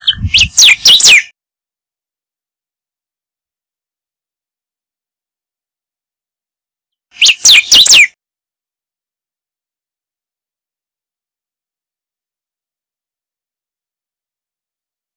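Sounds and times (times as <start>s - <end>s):
rey del bosque bird singing: 0.0s - 1.3s, 7.2s - 8.1s.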